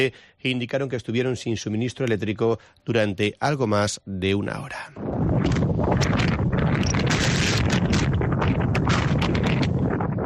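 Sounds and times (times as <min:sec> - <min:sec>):
speech: 0:00.0 - 0:07.0
strong storm wind gusting in Viveiro Galicia: 0:05.0 - 0:10.2.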